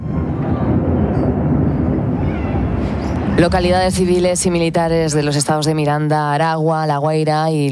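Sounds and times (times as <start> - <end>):
American military aircraft roaring overhead during bombing of Caracas Venezuela: 0.0 - 5.5
speech: 3.4 - 7.7.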